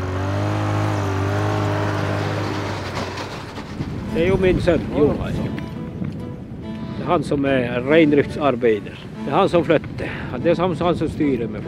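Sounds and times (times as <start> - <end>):
snowmobile engine droning as it drives: 0.0 - 5.1
speech: 4.2 - 5.6, 7.1 - 11.6.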